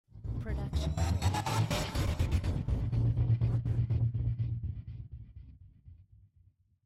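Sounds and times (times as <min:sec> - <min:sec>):
rhythmic rise: 0:00.4 - 0:04.1.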